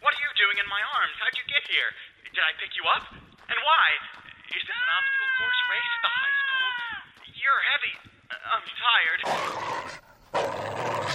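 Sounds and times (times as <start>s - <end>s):
speech: 0.7s - 11.1s
dog growling and snarling: 9.2s - 11.1s.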